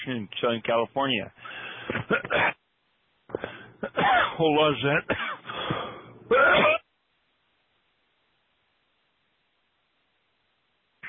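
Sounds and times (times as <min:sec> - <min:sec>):
speech: 0:00.0 - 0:02.6, 0:03.4 - 0:05.4, 0:06.3 - 0:06.8
person coughing: 0:01.8 - 0:02.6, 0:03.3 - 0:04.4, 0:05.1 - 0:06.8.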